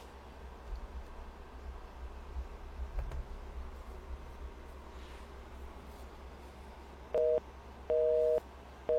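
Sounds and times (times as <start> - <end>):
telephone busy signal: 7.2 - 8.9.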